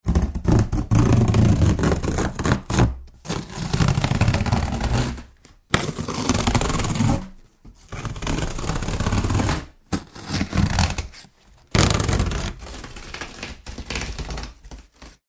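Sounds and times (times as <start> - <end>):
cardboard box being torn open: 0.0 - 15.2.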